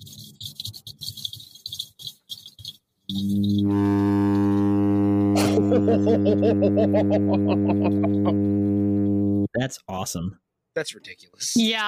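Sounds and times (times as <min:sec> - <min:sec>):
midshipman fish humming a low buzzing drone: 0:03.1 - 0:09.5
burst of laughter: 0:05.4 - 0:08.4
speech: 0:05.8 - 0:11.8.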